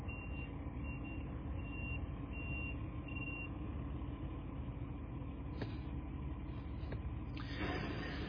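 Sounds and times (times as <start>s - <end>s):
delivery truck reversing beep: 0.0s - 3.5s
delivery truck heavy engine idling: 0.0s - 8.2s.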